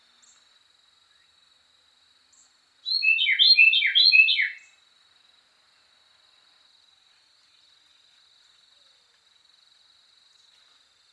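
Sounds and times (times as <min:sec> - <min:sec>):
Carolina wren song: 0:02.3 - 0:04.8.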